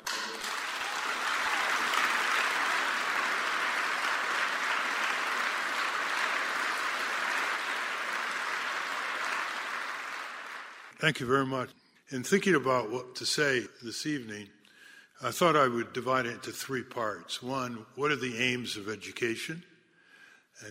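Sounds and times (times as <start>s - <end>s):
large audience applauding a speaker: 0.0s - 11.0s
speech: 11.0s - 14.6s, 15.2s - 19.7s.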